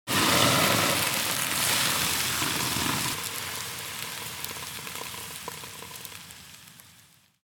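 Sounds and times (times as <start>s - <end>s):
fire extinguisher spraying water: 0.1s - 3.2s
water sizzling: 0.1s - 7.2s.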